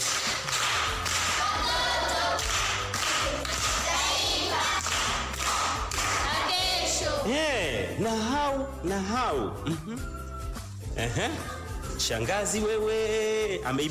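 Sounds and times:
group applauding at a primary school event: 0.0 - 7.1
speech: 8.0 - 10.2, 11.0 - 13.9.

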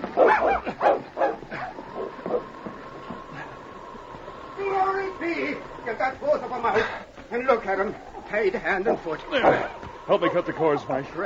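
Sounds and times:
big dog barking: 0.0 - 2.5, 8.8 - 10.9
laughter: 0.4 - 11.2
speech: 0.5 - 1.0, 6.0 - 11.2.

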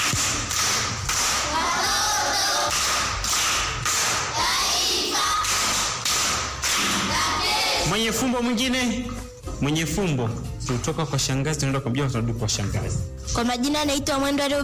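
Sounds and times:
audience rhythmic group clapping at a primary school riddle session: 0.0 - 7.9
speech: 8.2 - 14.6.

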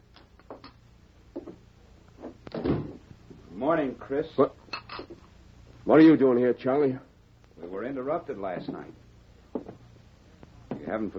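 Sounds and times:
dull thump of door shutting: 2.5 - 3.0
speech: 3.6 - 4.6, 5.8 - 9.0, 10.9 - 11.1.

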